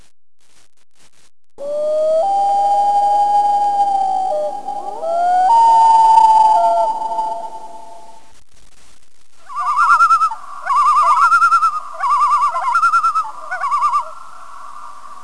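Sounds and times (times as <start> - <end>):
loon wailing and tremolo calls: 1.6 - 8.2, 9.5 - 14.2.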